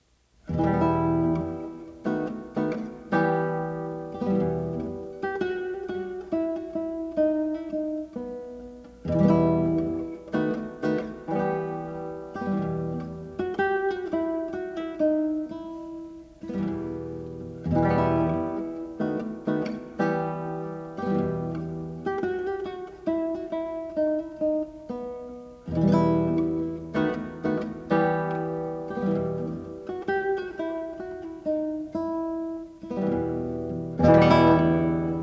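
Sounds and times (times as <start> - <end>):
gavotte in E minor for solo guitar: 0.0 - 35.2.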